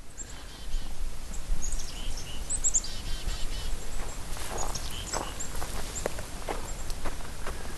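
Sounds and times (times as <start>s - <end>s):
flock of chickadees chirping among red pines and birch trees: 0.0s - 7.7s
crunching footsteps: 3.3s - 7.7s.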